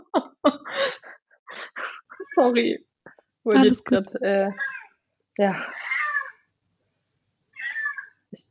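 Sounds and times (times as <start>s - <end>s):
speech: 2.4s - 4.7s, 5.4s - 5.8s
female cat meowing: 4.5s - 4.9s, 5.8s - 6.4s, 7.5s - 8.2s.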